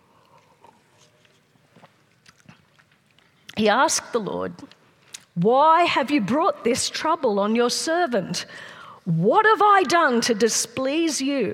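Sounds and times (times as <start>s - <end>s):
speaker sipping water with soft slurps: 0.0s - 3.6s
speech: 3.6s - 4.8s, 5.4s - 11.5s.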